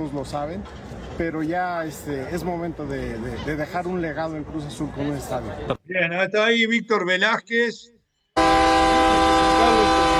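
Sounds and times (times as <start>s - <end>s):
speech: 0.0s - 8.9s
train horn blaring: 8.4s - 10.1s.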